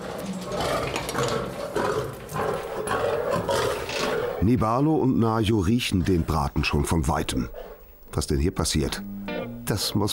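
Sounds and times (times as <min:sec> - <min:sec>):
lions roaring and growling: 0:00.0 - 0:04.6
speech: 0:04.4 - 0:09.1, 0:09.7 - 0:10.1.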